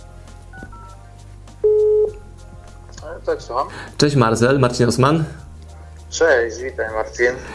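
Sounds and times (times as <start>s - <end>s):
loud steady electronic tone of a phone number being dialed: 1.6s - 2.2s
speech: 3.2s - 5.5s, 6.1s - 7.5s.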